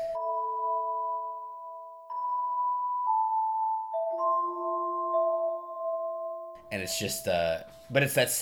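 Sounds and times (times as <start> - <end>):
gentle calm game music with soft chime-like tones: 0.0 - 8.4
speech: 6.7 - 8.4.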